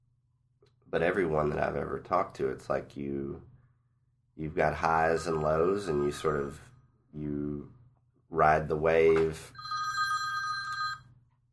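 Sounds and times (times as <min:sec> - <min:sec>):
speech: 0:00.9 - 0:03.5, 0:04.4 - 0:09.8
telephone bell ringing: 0:09.5 - 0:11.2.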